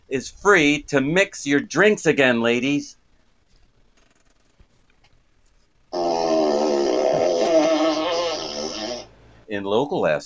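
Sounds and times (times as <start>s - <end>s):
speech: 0.1s - 3.0s, 9.5s - 10.2s
long buzzy fart sound effect: 6.0s - 9.1s.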